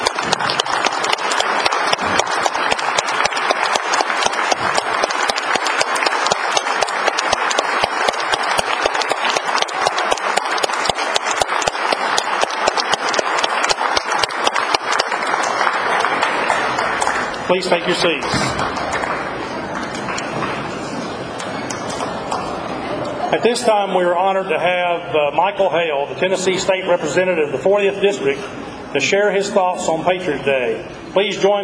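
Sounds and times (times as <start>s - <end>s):
large crowd applauding standing awardees: 0.0s - 23.3s
speech: 17.5s - 18.7s, 23.3s - 31.6s.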